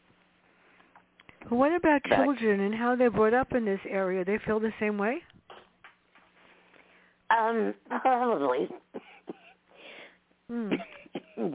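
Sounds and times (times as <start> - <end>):
breathing: 0.4 - 1.4, 6.4 - 7.3, 9.1 - 10.2
speech: 1.4 - 5.3, 7.4 - 9.0, 10.5 - 11.5
person coughing: 8.5 - 9.6, 10.5 - 11.5
throat clearing: 10.5 - 11.5.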